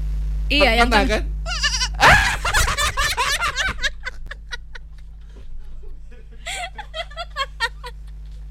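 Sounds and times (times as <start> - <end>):
speech: 0.5 - 1.6
person imitating a goat's bleat: 1.5 - 2.1
laughter: 1.5 - 8.2.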